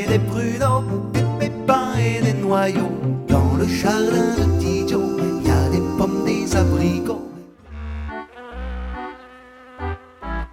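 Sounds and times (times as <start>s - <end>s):
speech: 0.1s - 5.1s
fly buzzing: 6.0s - 10.5s.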